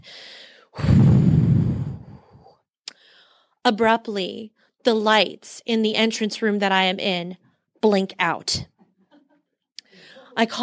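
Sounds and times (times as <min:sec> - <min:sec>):
slow steadying breath in and out: 0:00.0 - 0:03.6
speech: 0:03.7 - 0:08.7, 0:10.4 - 0:10.6.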